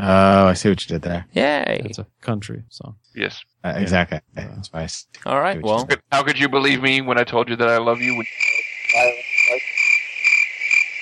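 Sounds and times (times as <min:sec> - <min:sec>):
speech: 0:00.0 - 0:09.2
cricket chirping: 0:07.7 - 0:11.0
low throaty croaks: 0:07.9 - 0:11.0.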